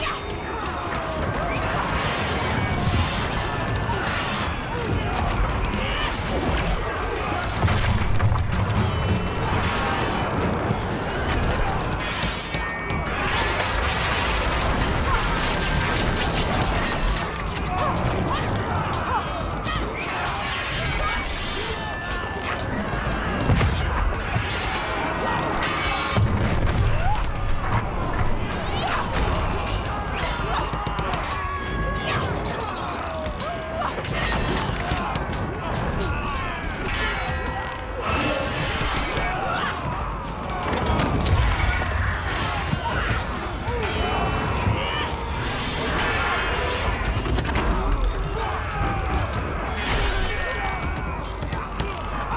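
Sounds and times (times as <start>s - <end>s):
battle ambience at the docks: 0.0s - 52.3s.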